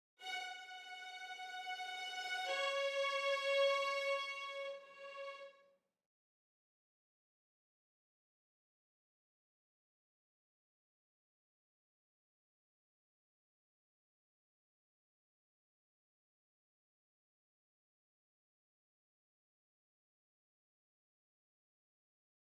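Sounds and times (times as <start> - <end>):
violins: 0.2 - 5.6.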